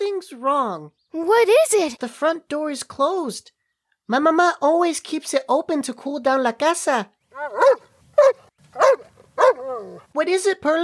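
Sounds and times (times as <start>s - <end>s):
speech: 0.3s - 10.8s
dog growling at a house's front door: 7.4s - 10.1s.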